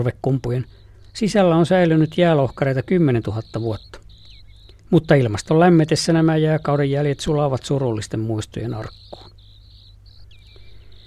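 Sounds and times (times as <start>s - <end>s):
speech: 0.0s - 4.0s, 4.9s - 9.3s
broad-billed sandpiper trilling: 0.0s - 11.0s
constant low hum: 0.0s - 11.0s.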